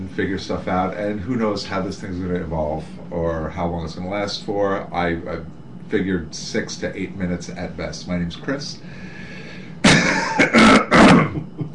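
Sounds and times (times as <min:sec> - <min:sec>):
speech: 0:00.1 - 0:09.1
person coughing: 0:09.8 - 0:11.6.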